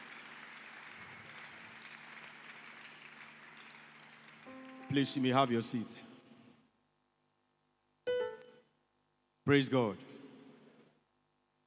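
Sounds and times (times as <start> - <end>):
audience clapping hands in applause: 0.0 - 6.3
speech: 4.6 - 6.1, 9.5 - 10.1.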